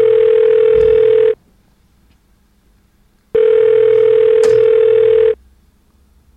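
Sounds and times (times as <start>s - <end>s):
telephone ringing tone for an unanswered call: 0.0s - 1.4s, 3.4s - 5.4s.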